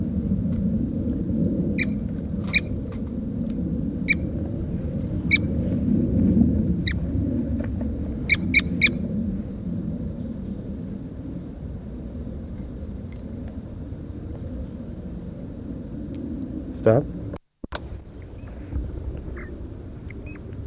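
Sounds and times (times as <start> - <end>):
low outdoor rumble: 0.0 - 20.6
bird giving short sharp high calls: 1.8 - 2.8, 8.2 - 9.0, 18.0 - 20.4.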